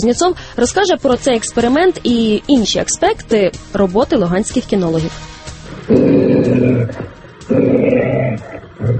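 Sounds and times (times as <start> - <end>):
speech: 0.0 - 5.3, 6.7 - 8.9
steppe wolf at the canine centre of the Luhansk regional police growling deeply: 5.8 - 8.9.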